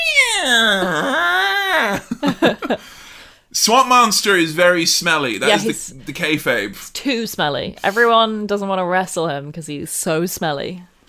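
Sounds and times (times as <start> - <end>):
person imitating agitated cat yowling: 0.0 - 2.1
laughter: 1.7 - 2.8
speech: 3.6 - 10.9.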